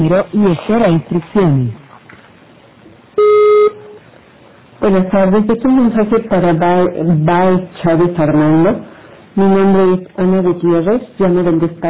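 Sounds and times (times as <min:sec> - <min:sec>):
faint hiss: 0:00.0 - 0:11.8
speech: 0:00.1 - 0:01.8, 0:04.8 - 0:11.8
voicemail system recording beep: 0:03.2 - 0:04.0.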